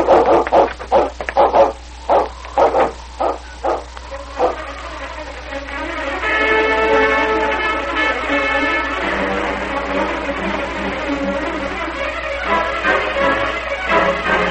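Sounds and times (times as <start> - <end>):
large malamute dog barking: 0.0 - 4.6
steady sustained tone: 0.0 - 14.5.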